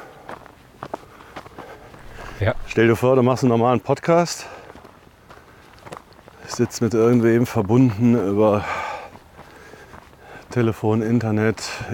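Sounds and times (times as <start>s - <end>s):
footsteps of a hiker on a walking trail: 0.2s - 3.0s, 4.5s - 6.5s, 9.1s - 10.4s
speech: 2.4s - 4.6s, 6.6s - 8.8s, 10.6s - 11.9s.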